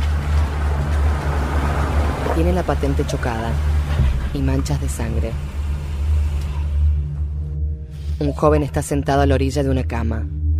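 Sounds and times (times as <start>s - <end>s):
latest-model car engine rumbling entering a garage: 0.0s - 8.1s
speech: 2.4s - 5.6s, 8.2s - 10.4s.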